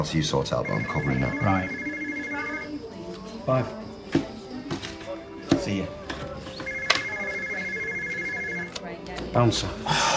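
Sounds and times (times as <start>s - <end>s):
speech: 0.0s - 1.9s, 3.4s - 4.3s, 5.7s - 6.0s, 9.3s - 10.0s
mobile phone ringing: 0.5s - 2.9s, 6.6s - 8.8s.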